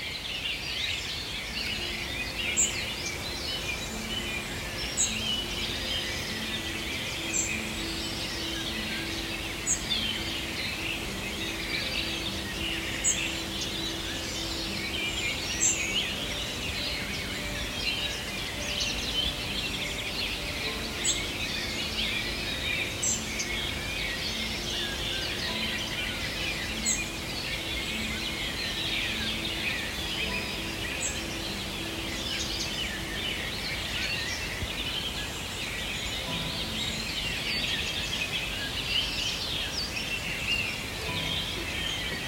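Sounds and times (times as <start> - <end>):
birds chirping outdoors at sunrise: 0.0 - 42.2.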